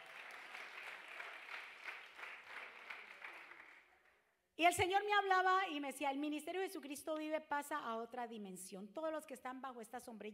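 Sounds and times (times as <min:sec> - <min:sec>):
audience applauding: 0:00.0 - 0:04.1
speech: 0:04.6 - 0:10.3.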